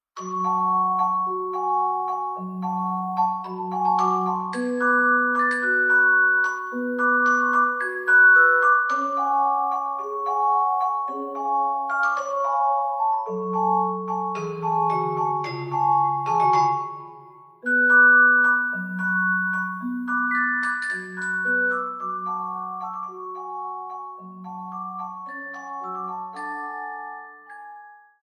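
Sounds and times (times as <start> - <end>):
celesta: 0.0 - 28.3.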